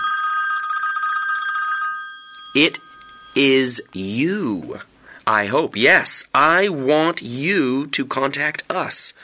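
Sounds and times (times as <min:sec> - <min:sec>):
telephone bell ringing: 0:00.0 - 0:03.5
speech: 0:02.6 - 0:09.2.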